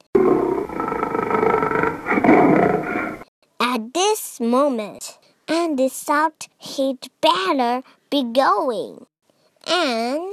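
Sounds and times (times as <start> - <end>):
lion roaring: 0.0 - 3.3
speech: 4.4 - 9.1, 9.7 - 10.3.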